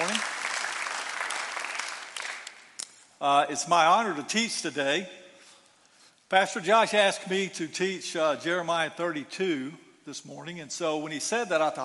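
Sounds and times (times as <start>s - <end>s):
church congregation applauding during a morning service: 0.0s - 2.8s
speech: 3.2s - 5.2s, 6.3s - 11.8s.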